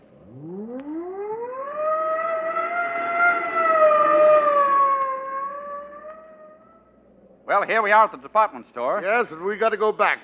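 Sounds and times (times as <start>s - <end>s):
police car siren wailing: 0.0s - 7.0s
speech: 7.6s - 10.2s.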